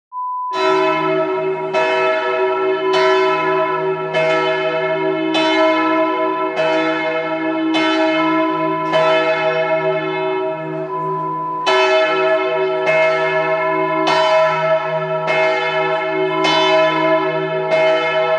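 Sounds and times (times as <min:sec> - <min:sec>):
church bell: 0:00.5 - 0:18.3.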